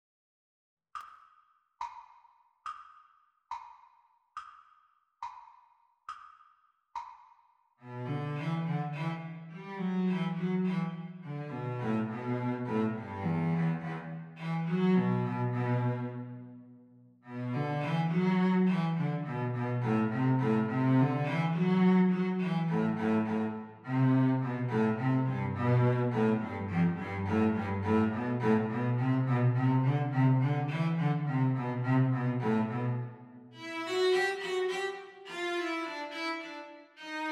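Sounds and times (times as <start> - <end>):
cello duet playing a reel at practice speed: 7.8 - 16.6, 17.3 - 37.2.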